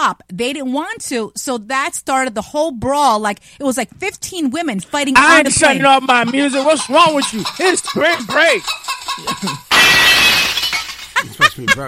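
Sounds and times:
speech: 0.0s - 10.5s, 11.2s - 11.8s
laughter: 5.4s - 9.7s, 11.1s - 11.8s
glass shattering: 6.9s - 11.8s.

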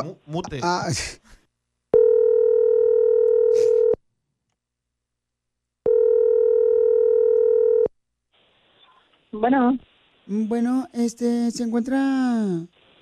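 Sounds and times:
speech: 0.0s - 1.3s, 9.3s - 13.0s
telephone line tone while a call is placed: 2.0s - 4.0s, 5.9s - 7.9s.

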